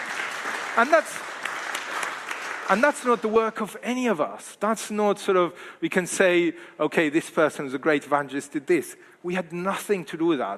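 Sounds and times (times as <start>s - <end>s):
church audience applause: 0.0s - 3.6s
speech: 0.8s - 1.3s, 2.7s - 10.5s.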